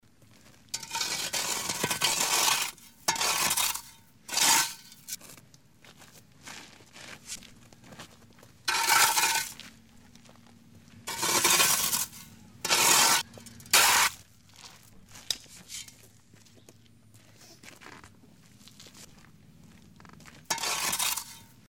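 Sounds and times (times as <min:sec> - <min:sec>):
shovel digging soil for planting a tree: 0:00.7 - 0:05.3, 0:08.7 - 0:09.6, 0:11.1 - 0:14.2, 0:15.2 - 0:16.0, 0:20.5 - 0:21.6.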